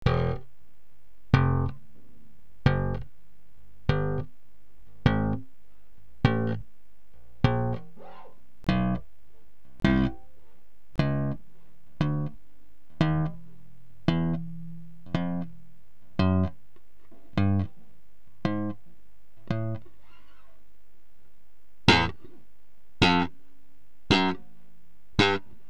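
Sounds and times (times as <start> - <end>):
short bass guitar slap: 0.0 - 0.5, 1.3 - 1.9, 2.6 - 3.1, 3.8 - 5.5, 6.2 - 9.1, 9.8 - 10.3, 11.0 - 11.4, 12.0 - 17.8, 18.4 - 18.8, 19.4 - 20.0, 21.9 - 22.4, 23.0 - 23.4, 24.1 - 24.5, 25.2 - 25.5.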